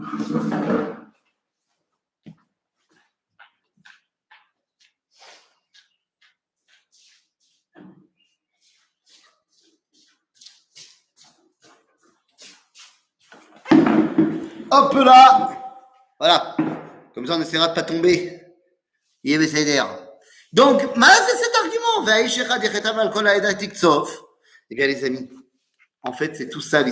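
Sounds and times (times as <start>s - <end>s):
chair knocking, scraping and creaking while being swapped and moved: 0.0s - 1.2s, 13.4s - 14.7s, 16.6s - 17.2s
speech: 0.1s - 0.9s, 15.0s - 15.4s, 16.2s - 16.6s, 17.2s - 18.4s, 19.2s - 25.4s, 26.0s - 26.9s.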